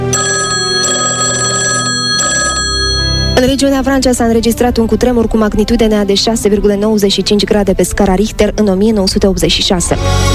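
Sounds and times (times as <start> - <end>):
telephone bell ringing: 0.0 - 3.5
speech: 3.4 - 10.3.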